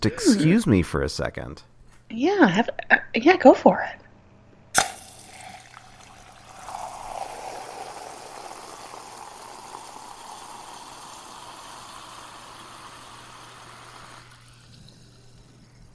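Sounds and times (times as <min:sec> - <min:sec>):
speech: 0:00.0 - 0:04.0
glass seltzer bottle opening click: 0:04.8 - 0:05.6
fizzing seltzer bubbles from a glass seltzer bottle: 0:04.8 - 0:15.9.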